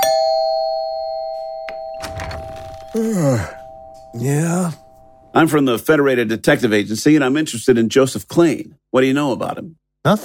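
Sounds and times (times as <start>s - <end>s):
apartment doorbell ringing with a bright electric tone: 0.0s - 5.5s
person answering: 2.9s - 4.8s
speech: 3.0s - 10.2s.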